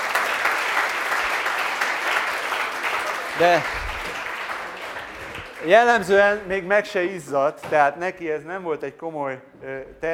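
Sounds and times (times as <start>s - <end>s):
audience applause of many hands clapping: 0.0s - 6.7s
speech: 3.4s - 3.9s, 5.6s - 10.1s.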